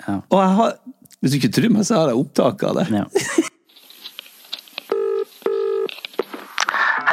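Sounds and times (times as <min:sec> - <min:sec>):
speech: 0:00.0 - 0:03.6
phone line electronic ring tones: 0:04.9 - 0:05.9.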